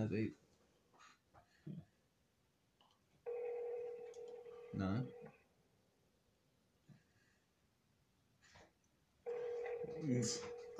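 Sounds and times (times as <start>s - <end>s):
speech: 0.0s - 0.4s, 1.7s - 1.9s, 4.7s - 5.4s, 9.9s - 10.7s
telephone ringback tone on an outgoing call: 3.3s - 5.4s, 9.3s - 10.7s.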